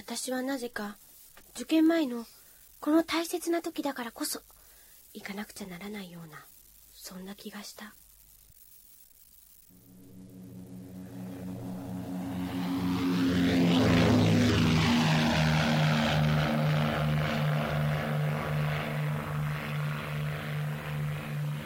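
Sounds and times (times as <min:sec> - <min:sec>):
speech: 0:00.1 - 0:04.5, 0:05.2 - 0:08.0
propeller airplane flying past overhead: 0:09.8 - 0:21.6.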